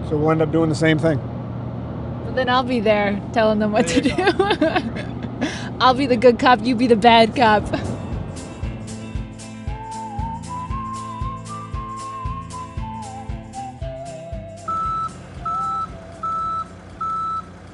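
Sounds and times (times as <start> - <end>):
large truck engine rumbling while a car is loaded: 0.0 - 17.7
speech: 0.1 - 1.4, 2.3 - 7.9
laughter: 3.8 - 5.6
truck reverse alarm high-pitched beeps: 14.6 - 17.7.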